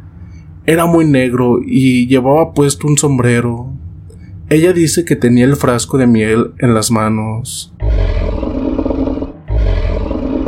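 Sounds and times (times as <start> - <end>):
speech: 0.7 - 3.8, 4.5 - 8.4
deep menacing creature growl and throaty snarl: 7.8 - 10.4.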